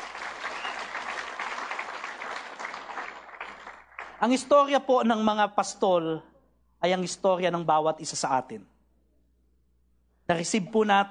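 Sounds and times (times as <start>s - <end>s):
audience applause in a church during a Christmas service: 0.0s - 4.2s
speech: 4.2s - 8.7s, 10.3s - 11.0s.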